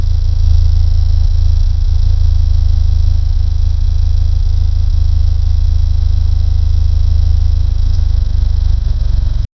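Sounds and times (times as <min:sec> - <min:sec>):
Porsche 930 exhaust at low rpm: 0:00.0 - 0:09.5.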